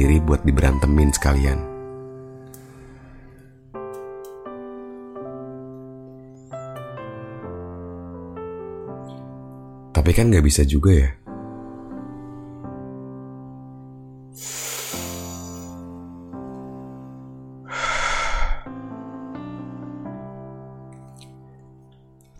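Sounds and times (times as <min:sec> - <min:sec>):
speech: 0:00.0 - 0:01.7, 0:10.0 - 0:11.2
soft sustained music: 0:00.0 - 0:22.3
deep breath drawn in close to the mic: 0:02.6 - 0:03.6, 0:14.4 - 0:15.8, 0:16.9 - 0:19.3.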